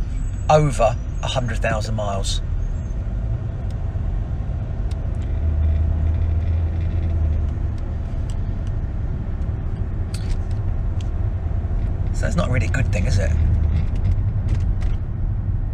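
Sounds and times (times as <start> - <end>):
car engine low rumble: 0.0 - 15.7
tyre noise on the road: 0.0 - 15.7
speech: 0.5 - 2.5, 12.2 - 13.5
faint clicks and rattles inside the car cabin: 4.8 - 15.1.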